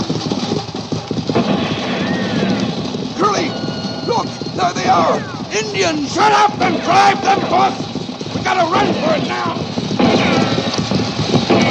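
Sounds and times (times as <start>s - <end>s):
hoofbeats of horses being driven at a gallop: 0.0s - 11.7s
noisy wash: 0.0s - 11.7s
speech: 5.0s - 7.9s, 8.5s - 9.6s.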